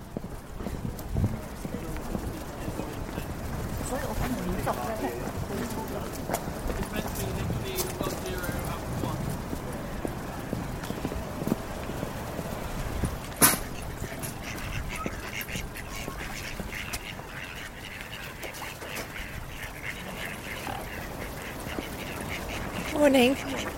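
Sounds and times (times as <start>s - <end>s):
busy outdoor clatter: 0.0s - 23.7s
group of ducks quacking: 0.5s - 23.7s
sharp knock: 13.4s - 13.7s
speech: 23.2s - 23.5s.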